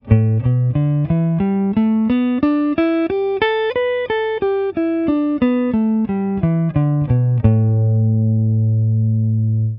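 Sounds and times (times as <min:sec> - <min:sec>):
guitar playing minor pentatonic scale in E: 0:00.0 - 0:09.7.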